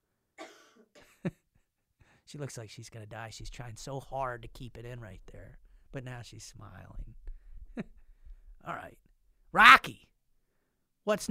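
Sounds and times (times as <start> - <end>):
raspy coughs: 0.4 - 1.2
speech: 2.3 - 7.2, 8.6 - 10.1, 11.1 - 11.2.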